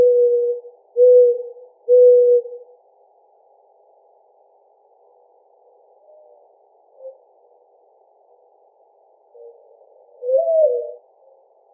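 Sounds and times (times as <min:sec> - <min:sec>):
mourning dove cooing: 0:00.0 - 0:02.7, 0:09.3 - 0:11.4.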